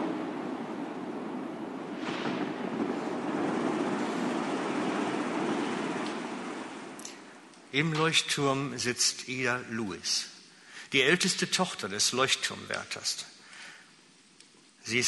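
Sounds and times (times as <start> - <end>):
powerful ocean wave crashing: 0.0 - 7.5
speech: 7.7 - 10.3, 10.9 - 13.3, 14.8 - 15.0.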